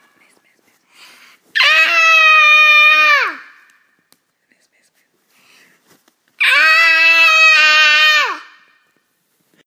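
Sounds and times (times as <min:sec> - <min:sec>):
baby screaming: 0:01.6 - 0:03.7, 0:06.4 - 0:08.8.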